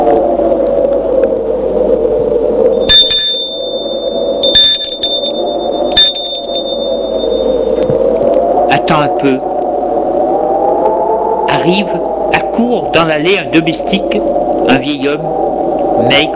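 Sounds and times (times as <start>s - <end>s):
low drone: 0.0s - 16.3s
bell at a castle gate ringing: 2.8s - 7.8s
speech: 8.9s - 9.5s, 11.6s - 15.4s, 16.1s - 16.3s.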